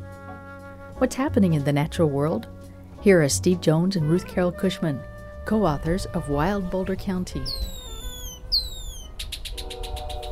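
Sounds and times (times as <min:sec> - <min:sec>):
speech: 0:01.0 - 0:07.8
red-winged blackbird calling with sliding whistles and buzzy trill: 0:07.4 - 0:10.3.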